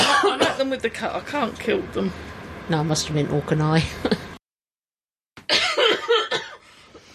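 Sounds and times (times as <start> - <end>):
person coughing harshly: 0.0 - 0.7, 5.4 - 6.7
speech: 0.7 - 4.2.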